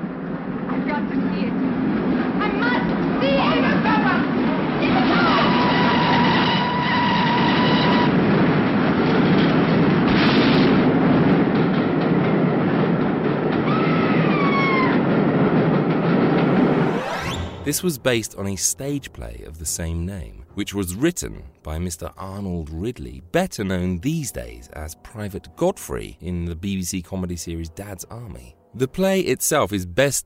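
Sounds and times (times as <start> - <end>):
train rumbling past: 0.0 - 27.3
shrill whistling squeals of a train: 5.1 - 8.1
speech: 17.7 - 30.2.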